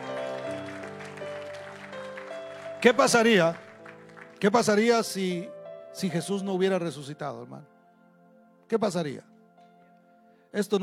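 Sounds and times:
audience clapping: 0.0 - 5.0
keyboard or organ chords: 0.0 - 10.5
speech: 2.8 - 3.6, 4.4 - 7.7, 8.7 - 9.3, 10.5 - 10.8.

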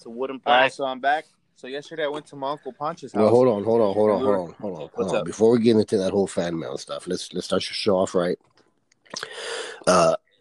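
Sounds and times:
speech: 0.0 - 8.5, 9.1 - 10.2
raspy drawn-out throat clearing: 9.2 - 10.3.

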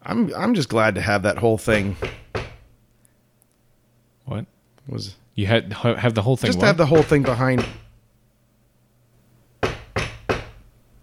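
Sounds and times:
speech: 0.1 - 2.2, 4.3 - 7.8
firm knocking on a door: 1.7 - 2.7, 6.6 - 8.0, 9.6 - 10.6.

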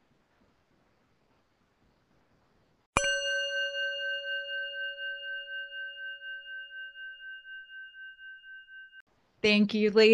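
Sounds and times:
bell struck and ringing: 3.0 - 9.0
speech: 9.4 - 10.1.

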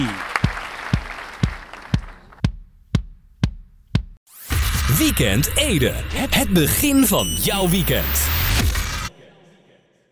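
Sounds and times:
applause: 0.0 - 2.4
speech: 5.0 - 8.8.

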